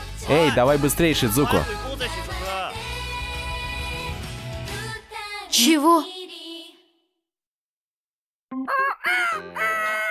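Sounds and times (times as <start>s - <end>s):
speech: 0.2s - 2.2s, 5.6s - 6.2s
rooster crowing: 8.7s - 10.0s.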